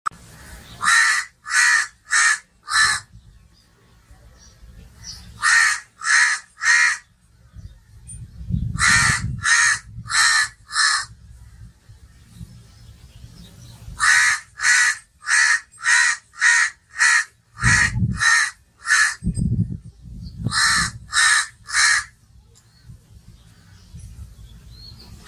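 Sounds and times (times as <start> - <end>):
calm bird ambience: 0.1 - 25.2
crow cawing: 0.8 - 3.1, 5.4 - 7.1, 8.8 - 11.2, 14.0 - 19.2, 20.5 - 22.1.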